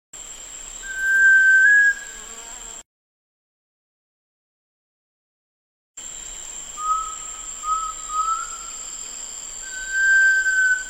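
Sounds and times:
sunbittern giving a drawn-out clear whistle: 0.8 - 2.1, 6.8 - 8.8, 9.6 - 10.8.

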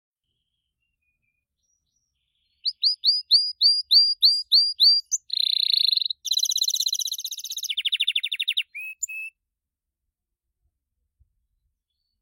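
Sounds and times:
Gloster canary singing: 1.0 - 9.4.

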